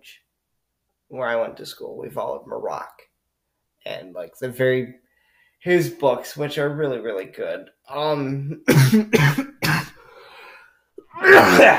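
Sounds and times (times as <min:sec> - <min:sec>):
speech: 0:00.0 - 0:00.2, 0:01.1 - 0:03.1, 0:03.8 - 0:05.0, 0:05.6 - 0:09.5, 0:11.4 - 0:11.7
short raspy breath: 0:05.0 - 0:05.6, 0:10.0 - 0:10.9
loud raspy coughs: 0:08.7 - 0:10.0.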